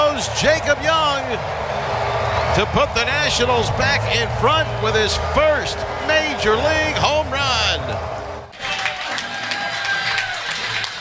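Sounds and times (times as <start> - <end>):
crowd cheering at a sports grill in West Palm Beach Florida: 0.0 - 11.0
speech: 0.2 - 1.9, 2.6 - 8.2
dense wash of clapping: 8.5 - 11.0.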